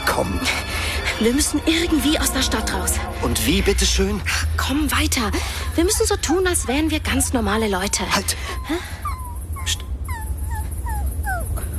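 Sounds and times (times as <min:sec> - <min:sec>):
steady low rumble: 0:00.0 - 0:11.7
speech: 0:00.2 - 0:09.0, 0:09.6 - 0:09.8
dog whimpering: 0:05.4 - 0:11.7.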